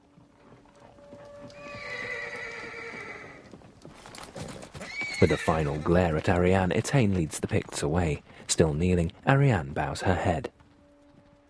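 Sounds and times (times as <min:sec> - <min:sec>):
horse hooves clopping and shuffling: 0:00.0 - 0:11.4
horse whinnying in a long wavering neigh: 0:00.8 - 0:03.5, 0:04.4 - 0:06.0
speech: 0:05.2 - 0:10.6.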